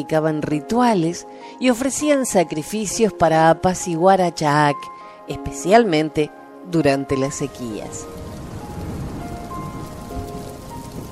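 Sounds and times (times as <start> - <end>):
speech: 0.0 - 8.2
steady rain pattering on a surface: 7.1 - 11.1.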